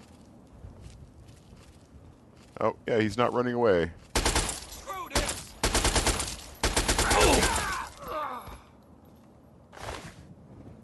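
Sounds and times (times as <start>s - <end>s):
speech: 2.6s - 4.1s
rapid automatic gunfire from a video game: 4.2s - 4.6s, 5.2s - 7.6s.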